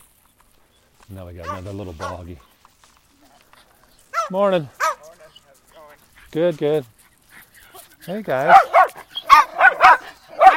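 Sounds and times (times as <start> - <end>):
speech: 1.1 - 2.5, 4.3 - 4.9, 6.3 - 7.0, 8.0 - 8.8
two dogs barking: 1.4 - 2.3, 4.1 - 5.2, 7.2 - 10.5.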